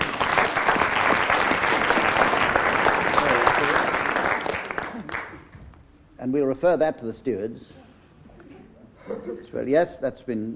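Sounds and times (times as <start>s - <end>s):
room full of people applauding: 0.0s - 5.5s
speech: 6.3s - 7.8s, 9.3s - 10.5s.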